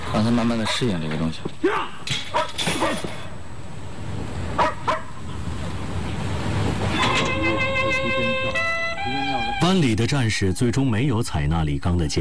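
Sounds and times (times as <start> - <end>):
outdoor hiss: 0.0 - 12.1
speech: 0.1 - 2.2, 9.7 - 12.1
working dog barking during training on a training field: 0.6 - 0.9, 2.3 - 3.2, 4.6 - 5.2.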